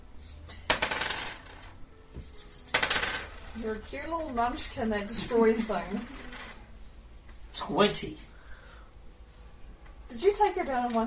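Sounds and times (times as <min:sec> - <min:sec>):
six-sided dice rolled during a tabletop role-playing game: 0:00.6 - 0:01.8, 0:02.7 - 0:03.4
speech: 0:03.6 - 0:06.3, 0:07.6 - 0:08.3, 0:10.1 - 0:11.0.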